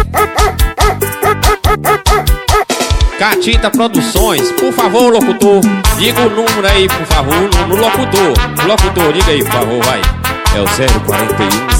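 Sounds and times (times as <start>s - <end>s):
dog barking: 0.0s - 2.7s
speech: 3.2s - 11.7s.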